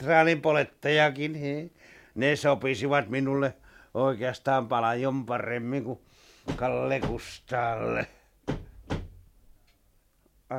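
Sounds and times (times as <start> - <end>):
speech: 0.0 - 8.2
wooden clunks of a door handle being worked and door unlatching: 6.5 - 7.3, 8.5 - 9.2.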